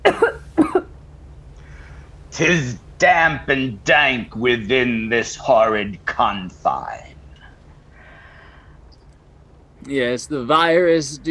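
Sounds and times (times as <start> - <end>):
hoarse coughs: 0.0 - 0.9
speech: 2.4 - 7.1, 9.8 - 11.2.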